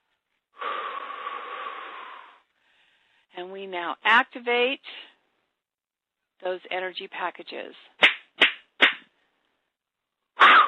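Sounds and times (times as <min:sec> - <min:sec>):
deep breath in and out: 0:00.5 - 0:03.3
speech: 0:03.4 - 0:05.1, 0:06.4 - 0:08.0.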